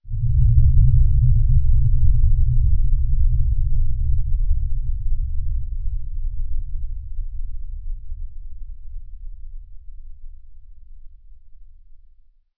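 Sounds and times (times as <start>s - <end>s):
supernatural thrumble: 0.1s - 9.0s.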